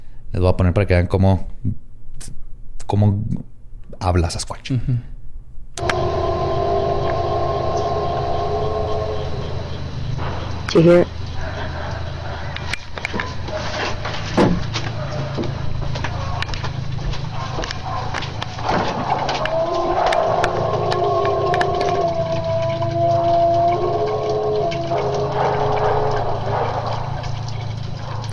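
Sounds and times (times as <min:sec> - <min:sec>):
speech: 0:00.3 - 0:05.1, 0:10.7 - 0:11.3
purported Bigfoot call of wavering howls and moans: 0:05.8 - 0:28.3.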